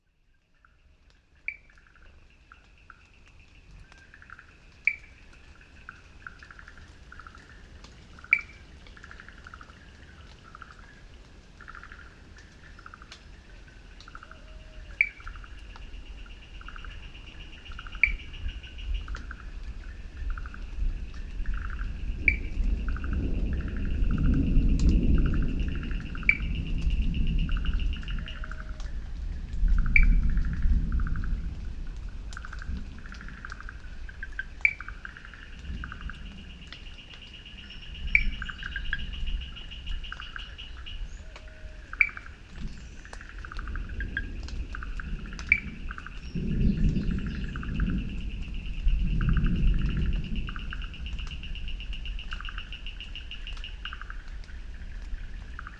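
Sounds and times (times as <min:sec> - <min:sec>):
tropical forest ambience: 0:00.0 - 0:55.7.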